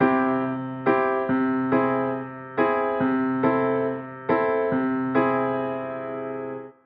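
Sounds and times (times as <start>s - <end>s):
piano: 0.0s - 6.8s.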